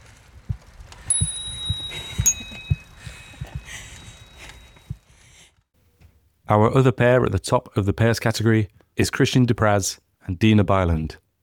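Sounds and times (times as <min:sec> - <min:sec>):
soft low thumps: 0:00.4 - 0:04.2
bicycle bell ringing: 0:01.1 - 0:04.8
speech: 0:06.5 - 0:11.4.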